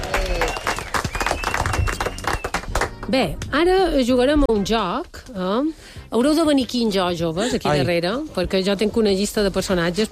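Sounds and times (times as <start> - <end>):
crowd applauding: 0.0 - 3.1
speech: 3.1 - 10.1.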